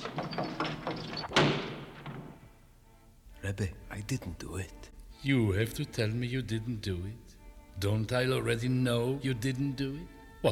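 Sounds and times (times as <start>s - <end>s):
prison cell door locking with a sharp clank: 0.0s - 2.4s
prison cell door metallic rattles: 0.0s - 2.5s
speech: 3.5s - 10.5s.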